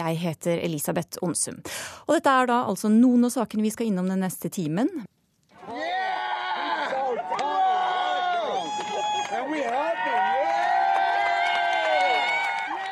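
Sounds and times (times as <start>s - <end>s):
speech: 0.0s - 6.0s
large crowd cheering and shouting outdoors in the streets of Boston at night: 5.6s - 12.9s.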